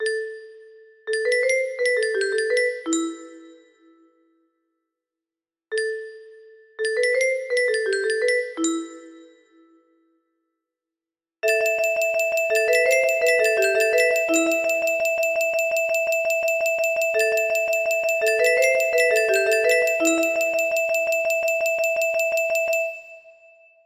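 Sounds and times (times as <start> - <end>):
music box playing opening riff: 1.1 - 3.5, 6.8 - 9.3, 11.4 - 23.2.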